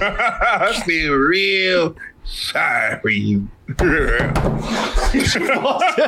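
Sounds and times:
people laughing: 0:00.0 - 0:01.0, 0:03.7 - 0:06.0
speech: 0:00.0 - 0:06.0
door rattling and thumping as someone pushes it shut: 0:03.8 - 0:04.9.

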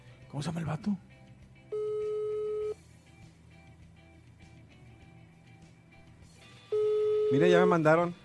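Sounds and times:
speech: 0:00.3 - 0:01.1, 0:07.3 - 0:08.2
telephone ringback tone on an outgoing call: 0:01.7 - 0:02.8, 0:06.7 - 0:07.7.

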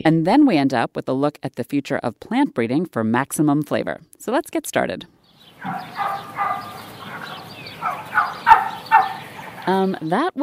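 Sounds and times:
speech: 0:00.0 - 0:06.9, 0:09.6 - 0:10.4
group of turkeys gobbling: 0:05.4 - 0:09.8.

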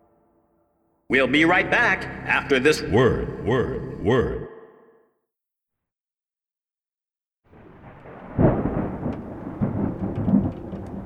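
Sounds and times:
speech: 0:01.1 - 0:04.5
deep loud thunder rumble: 0:07.5 - 0:11.0
heavy rain pouring: 0:07.5 - 0:11.0.

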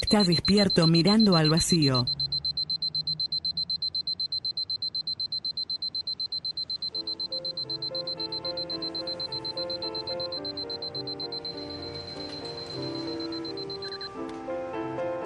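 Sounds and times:
speech: 0:00.0 - 0:02.2
alarm clock ringing with a rapid pulsing buzz: 0:00.0 - 0:14.1
soft melodic music: 0:06.9 - 0:15.2.

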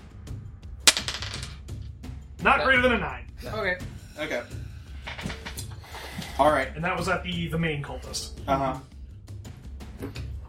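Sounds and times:
dice clattering on a hard tabletop: 0:00.9 - 0:01.6
speech: 0:02.4 - 0:04.6, 0:06.4 - 0:08.9, 0:10.0 - 0:10.3.

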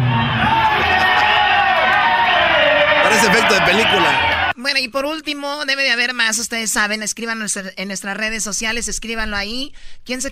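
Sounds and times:
loud group of people yelling together on cue: 0:00.0 - 0:04.5
speech: 0:03.2 - 0:10.3.

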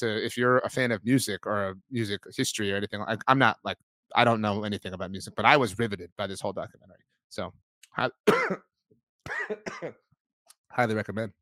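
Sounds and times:
speech: 0:00.0 - 0:10.0, 0:10.7 - 0:11.3
person coughing: 0:08.3 - 0:08.6, 0:09.3 - 0:10.0.

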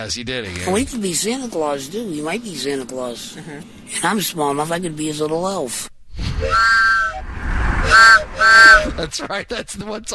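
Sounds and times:
speech: 0:00.0 - 0:06.8, 0:07.9 - 0:10.1
train whistle blowing: 0:06.4 - 0:09.0.

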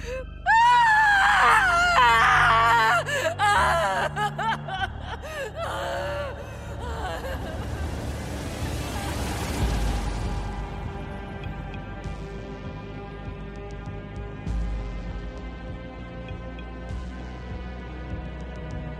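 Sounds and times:
person screaming and sobbing in terrified heartbroken anguish: 0:00.0 - 0:10.0
steady rumble of an engine or moving vehicle: 0:06.4 - 0:15.2.

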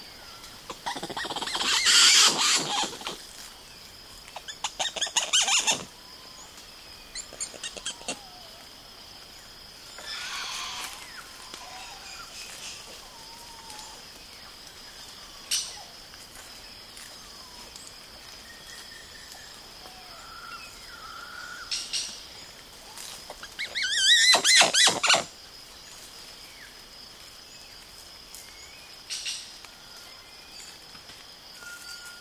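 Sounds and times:
steady hum of insects: 0:00.0 - 0:32.2
woolly spider monkeys calling in the Atlantic Forest of Brazil: 0:00.7 - 0:03.2, 0:04.4 - 0:05.9, 0:07.2 - 0:08.4, 0:23.3 - 0:25.3.

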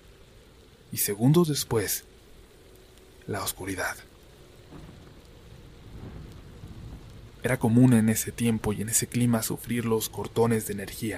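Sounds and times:
heavy rain pouring: 0:00.0 - 0:11.1
speech: 0:00.9 - 0:02.1, 0:03.3 - 0:04.1, 0:07.4 - 0:11.1
deep thunder rumbling: 0:04.4 - 0:11.1.

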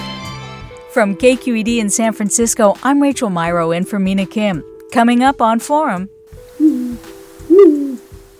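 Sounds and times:
speech: 0:00.9 - 0:06.8
great gray owl hooting: 0:06.5 - 0:08.1.

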